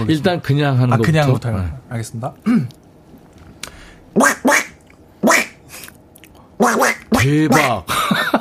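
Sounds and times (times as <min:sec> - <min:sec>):
speech: 0:00.0 - 0:02.8, 0:06.6 - 0:08.0
person imitating a cartoon duck that has fallen into water: 0:04.2 - 0:05.6, 0:06.6 - 0:07.9
laughter: 0:07.5 - 0:08.4.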